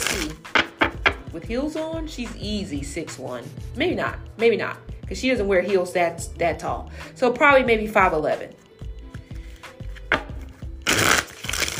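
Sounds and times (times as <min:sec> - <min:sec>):
playing cards being shuffled: 0:00.0 - 0:00.8, 0:09.1 - 0:11.7
speech: 0:01.4 - 0:08.6.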